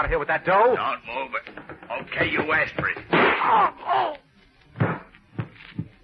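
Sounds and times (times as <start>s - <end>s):
speech: 0.0s - 4.2s
gunshots with brief tails: 3.1s - 3.6s
wailing moan-like cries: 3.4s - 4.2s.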